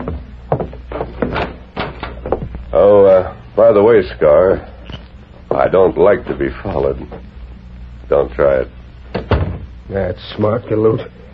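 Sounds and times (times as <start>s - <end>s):
door opening with knocks and rattling clunks: 0.0s - 2.6s, 9.1s - 9.7s
low steady hum: 0.0s - 11.3s
speech: 2.8s - 4.7s, 5.6s - 7.4s, 8.1s - 8.8s, 9.9s - 11.2s.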